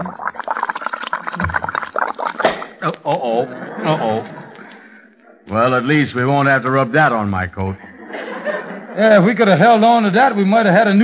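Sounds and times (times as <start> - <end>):
liquid poured into a shaving mug: 0.0 - 2.8
speech: 2.8 - 4.4, 5.5 - 7.8, 9.0 - 11.0
laughter: 2.8 - 5.7, 7.6 - 10.1.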